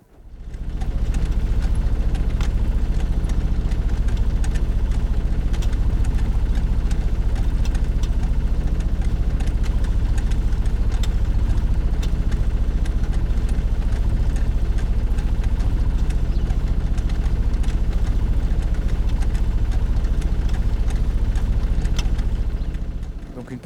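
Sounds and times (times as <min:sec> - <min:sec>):
lift pump running: 0:00.0 - 0:23.6
constant rattling vibration of lift pump: 0:00.3 - 0:23.6.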